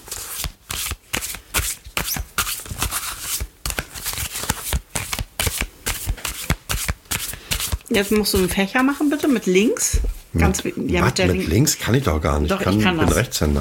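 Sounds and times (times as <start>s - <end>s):
tarot cards being shuffled: 0.0s - 9.3s
speech: 7.9s - 13.6s.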